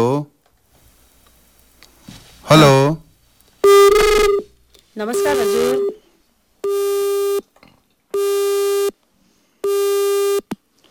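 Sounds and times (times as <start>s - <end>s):
speech: 2.5s - 3.0s, 5.0s - 6.0s
telephone busy tone from a failed phone connection: 3.6s - 4.5s, 5.1s - 6.0s, 6.6s - 7.4s, 8.2s - 8.9s, 9.6s - 10.5s.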